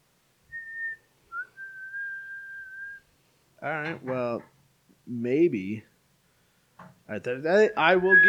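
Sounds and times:
person imitating a whistle with a clear sustained note: 0:00.6 - 0:03.0, 0:08.0 - 0:08.2
speech: 0:03.6 - 0:05.9, 0:07.1 - 0:08.2.

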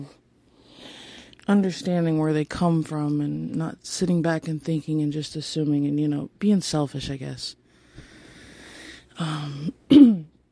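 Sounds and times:
speech: 0:00.0 - 0:00.2, 0:01.5 - 0:07.6, 0:09.2 - 0:10.3
person clearing throat: 0:09.2 - 0:10.4.

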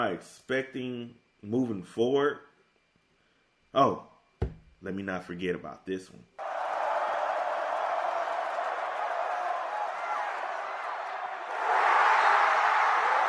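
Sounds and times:
speech: 0:00.0 - 0:02.5, 0:03.7 - 0:06.5
huge college football stadium crowd cheering after a win: 0:06.4 - 0:13.2.

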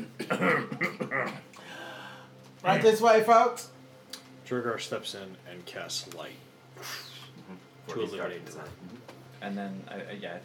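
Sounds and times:
person coughing: 0:00.0 - 0:01.5
speech: 0:00.3 - 0:00.8, 0:02.7 - 0:03.7, 0:04.5 - 0:10.4.

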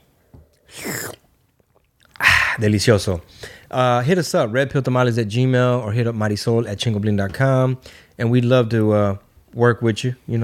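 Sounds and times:
person slurping a drink: 0:00.6 - 0:02.6
speech: 0:02.6 - 0:10.4.

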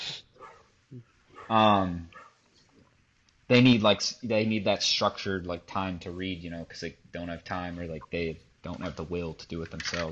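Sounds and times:
dog yipping and barking: 0:00.4 - 0:02.4
speech: 0:00.9 - 0:02.1, 0:03.5 - 0:10.1.

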